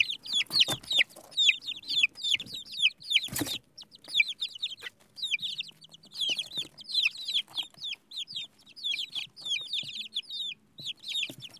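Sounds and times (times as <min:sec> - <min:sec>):
baby chicks cheeping: 0:00.0 - 0:11.5.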